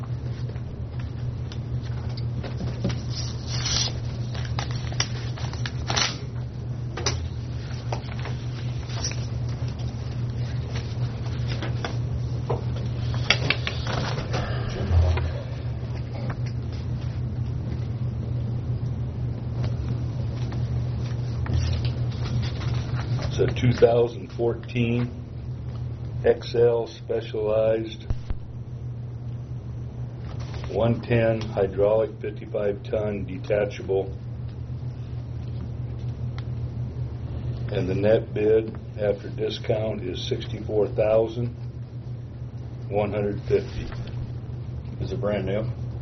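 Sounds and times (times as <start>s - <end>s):
steady low hum: 0.0s - 45.9s
paper rustling and crinkling: 1.8s - 6.3s, 7.6s - 12.0s, 12.8s - 14.4s, 20.3s - 23.8s, 30.2s - 30.8s
bid envelopes being torn open: 2.8s - 6.4s
speech: 23.8s - 25.2s, 26.2s - 28.1s, 30.8s - 34.2s, 37.8s - 41.6s, 42.9s - 44.0s, 45.0s - 45.8s.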